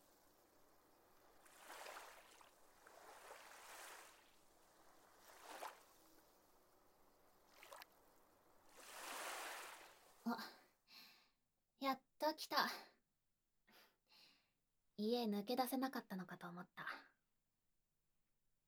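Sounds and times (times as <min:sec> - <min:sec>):
waves washing onto a seashore by a park at night: 0:00.0 - 0:10.2
speech: 0:10.3 - 0:10.6, 0:12.3 - 0:12.9, 0:15.0 - 0:17.0.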